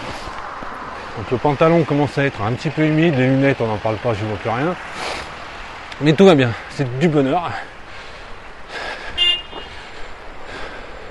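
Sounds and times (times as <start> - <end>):
traffic and road noise on a rainy street: 0.0 - 11.0
speech: 1.2 - 5.3, 6.0 - 7.8
car horn toot on a rainy street: 9.2 - 9.7.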